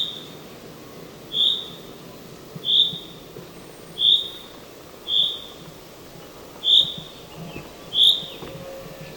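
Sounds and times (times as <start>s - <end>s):
common chaffinch whistled calls: 0.0s - 0.4s, 1.3s - 1.9s, 2.6s - 5.6s, 6.6s - 8.6s
quiet background hiss: 0.0s - 9.1s.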